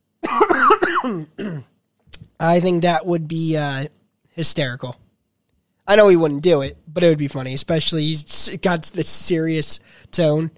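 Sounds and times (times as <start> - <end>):
raspy cough: 0.2 - 1.8
speech: 1.0 - 1.7, 2.4 - 5.0, 5.9 - 10.5.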